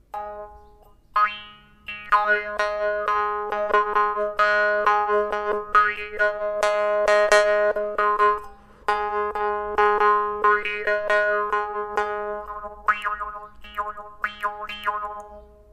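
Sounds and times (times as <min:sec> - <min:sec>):
morsing jaw harp: 0:00.1 - 0:15.7.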